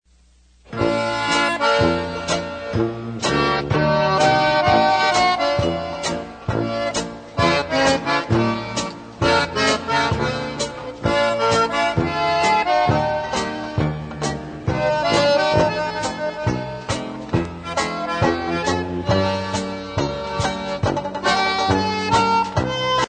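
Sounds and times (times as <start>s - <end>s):
little German band playing polka: 0.7s - 23.0s.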